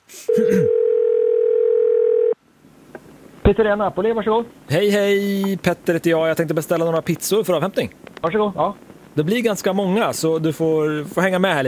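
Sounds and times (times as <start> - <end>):
speech: 0.4 - 0.8, 3.5 - 11.6
telephone dial tone when calling a pizzeria: 0.6 - 2.4.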